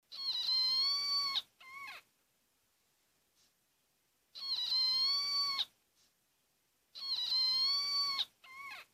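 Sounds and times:
red-eared slider turtle squeaking: 0:00.1 - 0:02.1, 0:04.4 - 0:05.8, 0:07.0 - 0:08.9.

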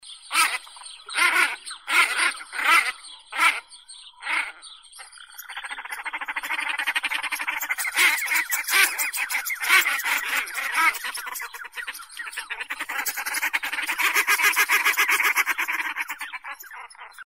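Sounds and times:
ducks quacking: 0:00.2 - 0:17.2.

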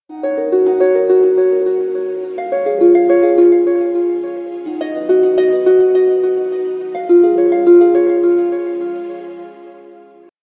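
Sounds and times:
harp with echo on a phone: 0:00.1 - 0:10.3.

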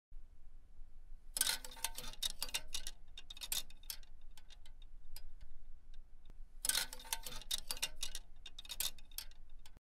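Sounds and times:
metal hanger plates clinking: 0:01.4 - 0:06.0, 0:06.6 - 0:09.8.

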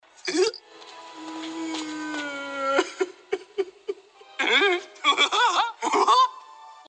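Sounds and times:
person giggling: 0:02.8 - 0:06.4.

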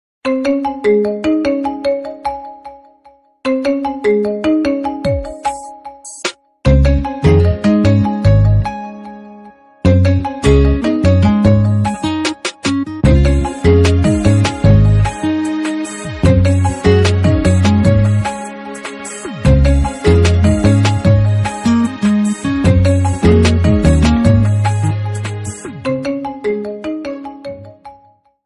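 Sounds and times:
Lenovo phone ringtone: 0:00.3 - 0:28.2.

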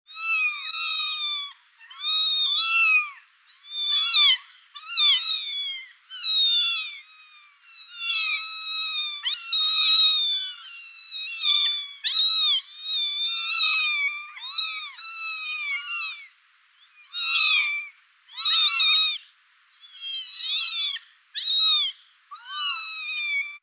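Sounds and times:
kittens meowing: 0:00.1 - 0:23.6.

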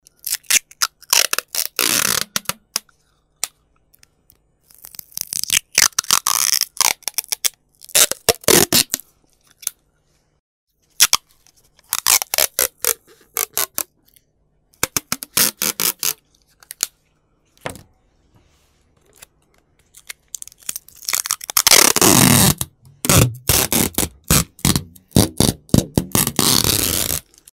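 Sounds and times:
adhesive tape sounds: 0:00.2 - 0:02.9, 0:04.6 - 0:09.8, 0:11.0 - 0:13.9, 0:14.8 - 0:17.0, 0:19.1 - 0:27.5.

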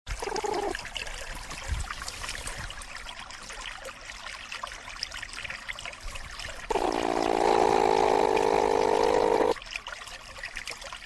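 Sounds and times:
platypus sound: 0:06.7 - 0:09.6.

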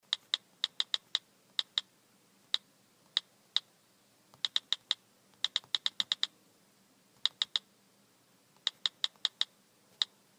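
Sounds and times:
iPhone keyboard clicks: 0:00.1 - 0:01.9, 0:04.3 - 0:06.3, 0:07.2 - 0:07.7, 0:08.6 - 0:10.1.

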